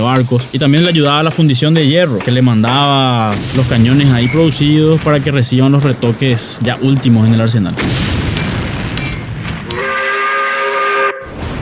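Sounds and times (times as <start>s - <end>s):
steam train rumbling and chuffing along the rails of Paraguay's railway: 0.0s - 7.5s
speech: 0.0s - 8.1s
steam train whistle: 9.7s - 11.4s.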